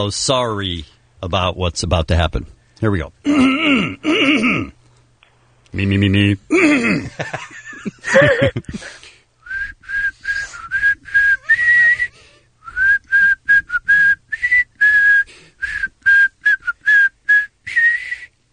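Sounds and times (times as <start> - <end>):
speech: 0.0 - 4.8, 5.7 - 9.1
laughter: 7.0 - 9.0
person whistling the melody of a song: 9.4 - 18.4.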